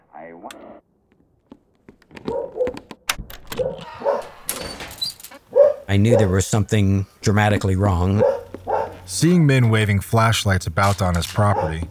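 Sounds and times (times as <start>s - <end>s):
dog on a dairy farm barking: 2.2s - 2.8s, 3.6s - 4.4s, 5.5s - 6.4s, 8.2s - 9.1s, 11.5s - 11.8s
dog on a dairy farm yelping: 3.6s - 4.4s, 5.5s - 6.3s, 8.2s - 9.1s
speech: 5.9s - 8.4s, 9.1s - 11.8s.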